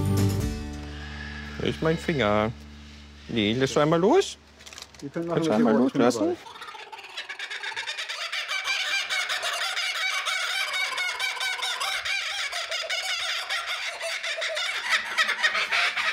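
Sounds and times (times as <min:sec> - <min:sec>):
speech: 0:01.6 - 0:02.6, 0:03.3 - 0:04.4, 0:05.0 - 0:06.6
bird's laughing call: 0:06.3 - 0:16.1.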